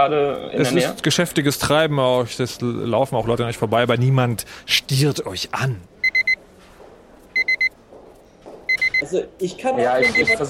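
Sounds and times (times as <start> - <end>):
speech: 0.0 - 5.9, 9.0 - 10.4
low murmur: 0.0 - 10.4
loud high-pitched electronic beeping: 6.0 - 6.4, 10.0 - 10.4.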